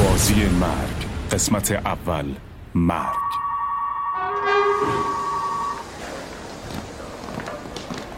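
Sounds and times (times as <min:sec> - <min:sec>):
speech: 0:00.1 - 0:03.4
train horn blaring loudly: 0:03.0 - 0:06.1.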